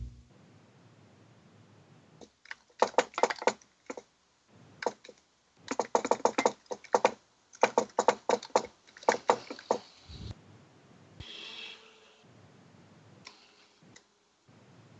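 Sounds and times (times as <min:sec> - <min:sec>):
typing on a computer keyboard: 0:02.5 - 0:04.1, 0:04.8 - 0:09.8.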